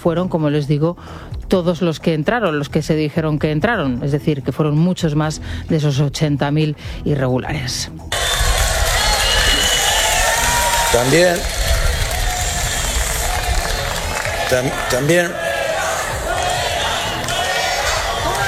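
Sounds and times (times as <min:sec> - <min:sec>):
speech: 0:00.0 - 0:08.2, 0:10.9 - 0:11.6, 0:14.5 - 0:15.4
large crowd jeering and booing a government minister: 0:08.1 - 0:18.4.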